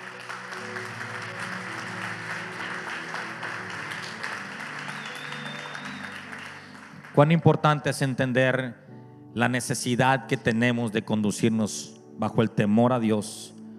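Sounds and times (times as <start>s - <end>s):
crowd applause: 0.0s - 7.6s
speech: 7.2s - 13.6s.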